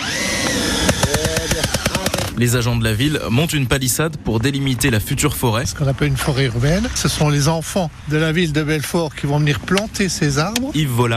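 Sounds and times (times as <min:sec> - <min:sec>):
power drill whining: 0:00.0 - 0:02.4
speech: 0:02.4 - 0:11.1.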